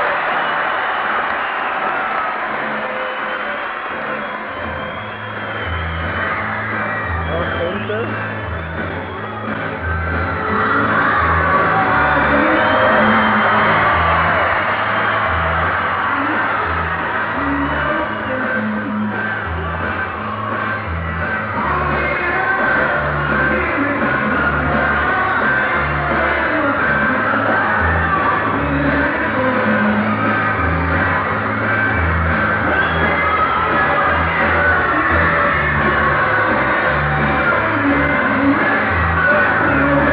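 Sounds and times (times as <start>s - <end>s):
band playing a song at a concert: 0.0s - 40.1s
concert crowd of fans screaming: 0.0s - 40.1s.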